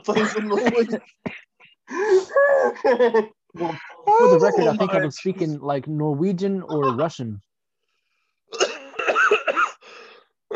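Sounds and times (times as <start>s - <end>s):
speech: 0.0s - 7.5s
person coughing: 8.5s - 10.5s.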